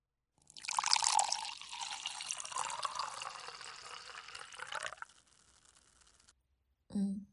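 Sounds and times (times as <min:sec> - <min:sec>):
liquor pouring into a cup: 0:00.5 - 0:06.3.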